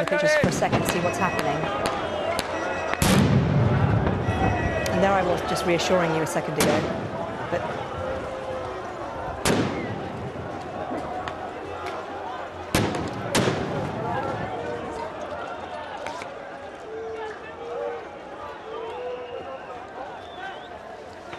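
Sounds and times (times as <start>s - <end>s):
speech: 0.0s - 2.0s, 5.0s - 7.8s
crowd noise and voices of protesters: 0.0s - 21.3s
tear gas canisters bursting with booming pops to disperse protesters: 0.4s - 4.7s, 9.3s - 11.3s, 12.7s - 14.4s.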